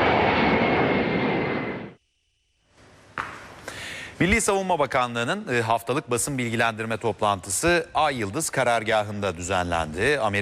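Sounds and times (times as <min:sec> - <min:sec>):
presidential airplane engine roar with a steady whine departing airport: 0:00.0 - 0:02.0
speech: 0:04.2 - 0:10.3.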